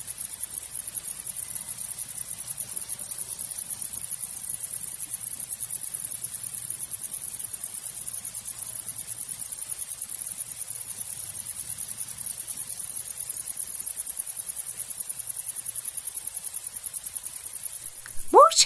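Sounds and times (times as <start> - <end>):
cricket chirping: 0.0 - 18.6
faint voice-like sound: 17.9 - 18.6.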